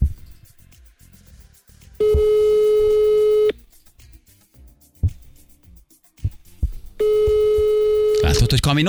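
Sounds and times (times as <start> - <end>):
telephone ringback tone: 2.0 - 3.5, 7.0 - 8.5
speech: 8.6 - 8.8.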